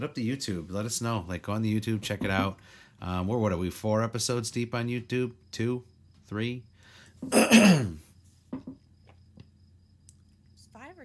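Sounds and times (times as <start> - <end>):
speech: 0.0 - 8.8
loud throat clearing: 7.2 - 8.1.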